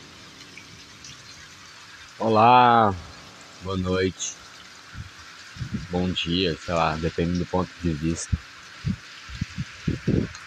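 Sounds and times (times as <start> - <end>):
heavy rain falling at a house set high up: 0.0 - 10.4
speech: 2.2 - 4.5, 5.9 - 9.0.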